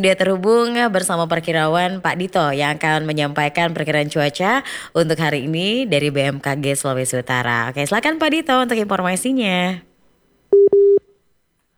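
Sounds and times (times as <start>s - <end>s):
speech: 0.0s - 9.9s
telephone call dialling tones trying to connect: 10.5s - 11.0s.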